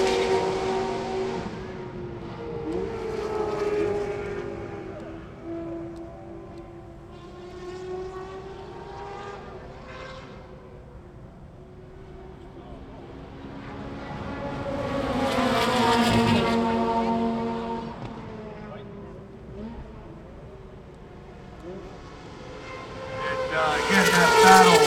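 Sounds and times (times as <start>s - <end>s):
several race car engines whining past on a track: 0.0s - 10.9s, 13.1s - 20.1s, 21.2s - 24.8s.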